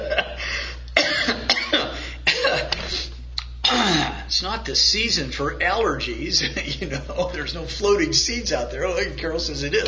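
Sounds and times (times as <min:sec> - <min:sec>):
person coughing with something caught in the throat: 0:00.0 - 0:04.3
speech: 0:04.4 - 0:09.8.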